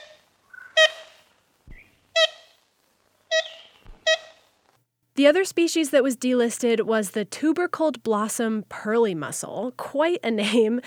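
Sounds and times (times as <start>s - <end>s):
large black-and-white woodpecker with a red crown giving horn-like toots: 0.0s - 2.6s, 3.3s - 4.5s
speech: 5.2s - 10.8s.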